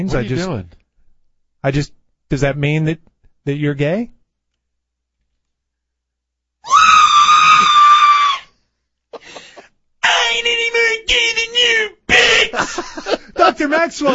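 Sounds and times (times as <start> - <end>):
speech: 0.0 - 0.8, 1.6 - 4.2, 12.8 - 14.1
person screaming loudly: 6.6 - 8.5, 10.0 - 12.7
laughter: 9.2 - 9.7, 12.1 - 14.1
person gasping: 9.2 - 9.7, 12.1 - 13.4.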